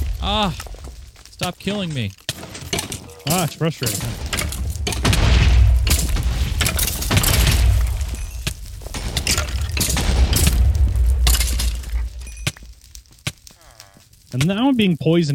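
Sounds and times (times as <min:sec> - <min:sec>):
video game rumbling explosion with crackling, shattering debris: 0:00.0 - 0:14.9
speech: 0:00.2 - 0:00.7, 0:01.4 - 0:02.2, 0:03.2 - 0:04.2, 0:14.3 - 0:15.3
video game cannon firing with a deep boom: 0:02.3 - 0:12.6.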